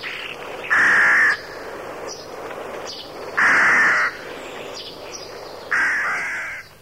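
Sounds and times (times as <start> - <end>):
Rook giving loud harsh caws: 0.0 - 1.9, 3.3 - 6.7.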